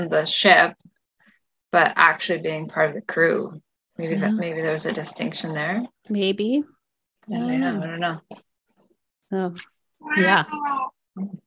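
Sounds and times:
speech: 0.0 - 0.8, 1.7 - 8.4, 9.3 - 11.4
cat meowing loudly: 10.0 - 11.0.

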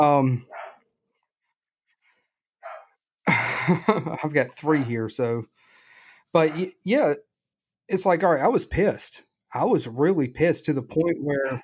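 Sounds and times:
speech: 0.0 - 0.6, 3.7 - 5.6, 6.3 - 7.3, 7.9 - 11.6
dogs barking: 0.5 - 0.8, 2.6 - 2.9, 6.4 - 6.7
laughter: 3.3 - 5.0.

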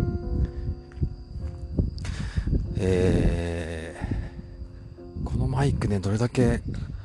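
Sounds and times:
brief hiss of noise: 0.0 - 7.0
footsteps of a person strolling, crunching along an outdoor path: 0.8 - 2.8
speech: 2.8 - 3.9, 5.6 - 6.9.

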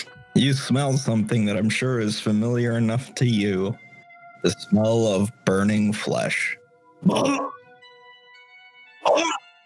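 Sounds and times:
speech: 0.4 - 7.5, 9.1 - 9.4
gruff vocal barks from a person imitating a dog: 7.0 - 7.6, 9.0 - 9.4.

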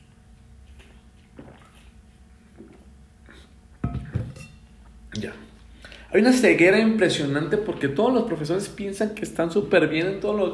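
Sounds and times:
person gulping water from a glass: 0.7 - 3.6
glass clinking: 3.8 - 4.7
speech: 5.2 - 5.5, 6.1 - 10.5.

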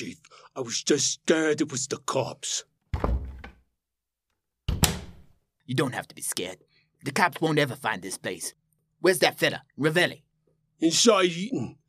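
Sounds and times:
speech: 0.6 - 2.7, 5.7 - 11.8
heavy door opening with thunk and rattle: 3.0 - 3.6, 4.7 - 5.3.

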